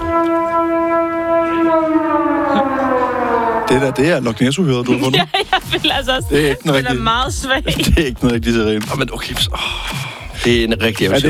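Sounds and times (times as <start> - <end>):
civil defence siren sounding the all-clear: 0.0 - 4.8
laughter: 2.3 - 8.8
speech: 3.7 - 11.2.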